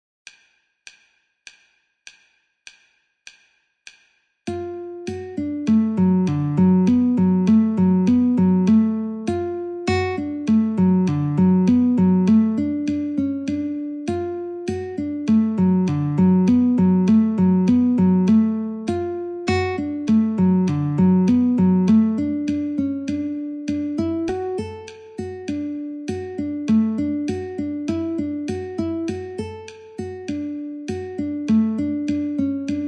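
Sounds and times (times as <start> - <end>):
metronome clicking at 50: 0.3 - 32.8
guitar playing in D: 4.5 - 32.8.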